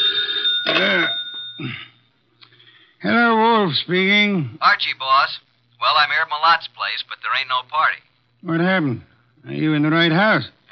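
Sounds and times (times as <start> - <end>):
old-fashioned telephone bell ringing: 0.0 - 1.8
faint steady hum: 0.0 - 10.7
speech: 3.0 - 10.6.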